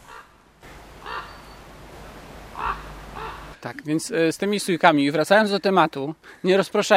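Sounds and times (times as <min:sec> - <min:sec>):
raven croaking: 0:00.0 - 0:00.4, 0:01.0 - 0:01.6, 0:02.5 - 0:03.6
steady outdoor hiss: 0:00.0 - 0:06.9
speech: 0:03.6 - 0:06.9.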